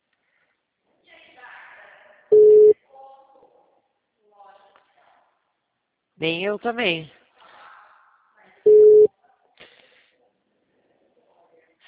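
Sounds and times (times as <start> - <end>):
telephone call tone from a mobile phone: 2.3 - 2.8, 8.7 - 9.1
speech: 6.2 - 7.2.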